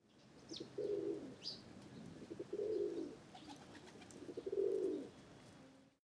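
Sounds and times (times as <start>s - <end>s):
pigeon cooing: 0.6s - 1.5s, 2.2s - 5.2s.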